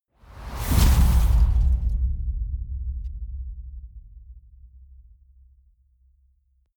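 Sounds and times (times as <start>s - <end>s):
gust hit: 0.2s - 3.0s.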